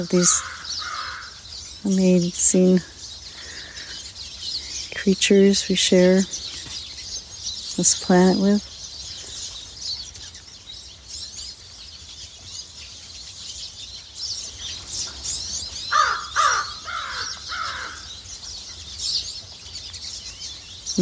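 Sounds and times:
speech: 0.0s - 0.7s, 1.8s - 3.0s, 5.0s - 6.5s, 7.8s - 8.7s
ravens giving hoarse croaking caws: 0.0s - 5.0s, 15.6s - 18.6s
constant broadband hiss of noise: 0.0s - 21.0s.

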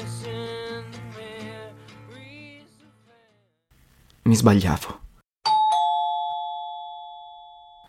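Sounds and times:
speech: 4.3s - 5.0s
doorbell two-tone ding-dong: 5.5s - 7.8s.

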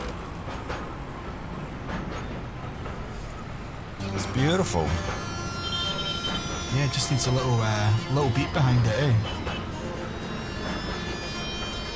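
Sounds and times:
passing train rumbling: 0.0s - 11.9s
speech: 4.1s - 5.3s, 6.7s - 9.4s
metallic squeals and clatter of a train: 4.2s - 11.9s.

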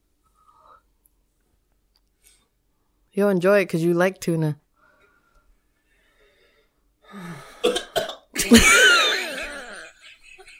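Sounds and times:
speech: 3.2s - 4.6s, 8.5s - 8.8s
person coughing deliberately: 7.6s - 10.0s.

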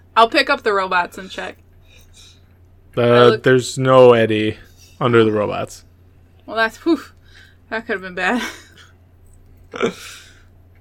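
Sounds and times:
speech: 0.2s - 1.6s, 3.0s - 5.9s, 6.5s - 8.6s, 9.7s - 10.2s
person making a burp sound with their voice: 9.7s - 10.1s.

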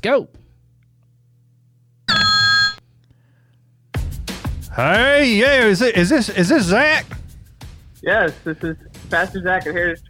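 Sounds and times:
speech: 0.0s - 0.4s, 4.8s - 7.2s, 8.0s - 10.0s
phone ringing with an electronic tone: 2.1s - 2.8s.

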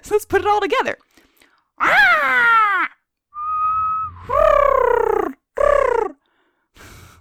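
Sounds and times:
speech: 0.1s - 1.1s
person imitating harsh bird calls: 1.8s - 6.2s.

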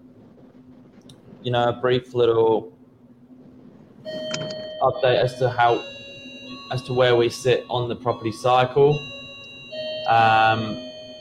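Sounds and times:
speech: 1.4s - 2.8s, 4.8s - 5.9s, 6.7s - 9.1s, 10.1s - 10.9s
doorbell chime ringing: 4.1s - 11.1s.

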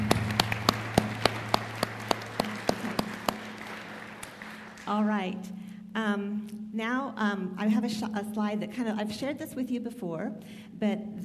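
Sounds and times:
church audience applause in Southeast Nebraska: 0.0s - 5.0s
low hum: 0.0s - 11.2s
speech: 4.9s - 11.2s.

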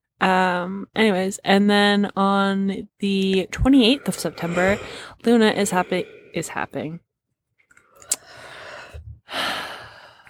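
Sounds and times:
speech: 0.2s - 7.0s
breathy yawn: 3.6s - 6.8s.

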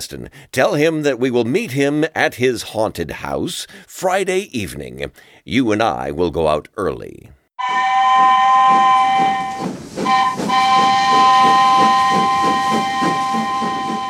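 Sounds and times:
speech: 0.0s - 9.8s
steam train whistle: 7.6s - 14.0s.

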